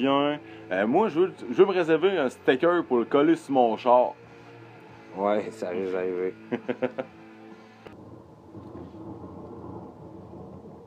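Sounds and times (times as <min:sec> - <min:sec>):
speech: 0:00.0 - 0:04.2, 0:05.2 - 0:07.2
laughter: 0:06.5 - 0:07.2
low continuous thunder rumbling: 0:07.9 - 0:10.8.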